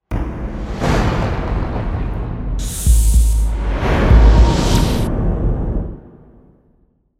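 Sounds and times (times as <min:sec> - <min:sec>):
taiko drums: 0:00.1 - 0:05.1
steam hissing: 0:02.6 - 0:03.8.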